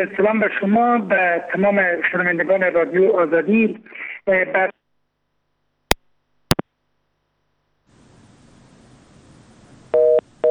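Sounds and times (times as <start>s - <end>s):
speech: 0.0s - 4.7s
soft hiss on the open telephone line: 7.9s - 10.0s
telephone busy-signal beeps: 10.0s - 10.4s.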